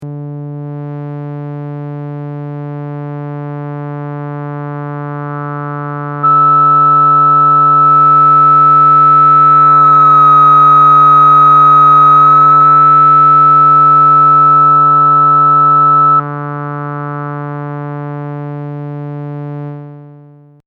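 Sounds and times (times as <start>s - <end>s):
high filter resonance sweeping up and down: 5.4s - 18.8s.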